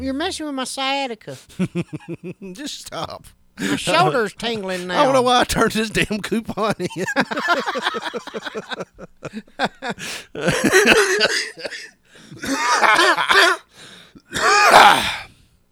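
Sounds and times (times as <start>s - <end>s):
speech: 0.0s - 15.3s
laughter: 1.5s - 4.2s, 4.8s - 13.6s
person in a harsh hacking coughing fit: 10.0s - 13.7s, 14.3s - 15.3s.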